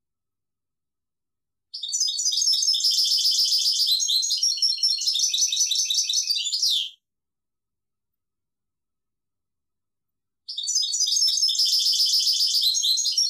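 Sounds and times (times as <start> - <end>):
European goldfinch singing: 1.8 - 7.0, 10.5 - 13.2.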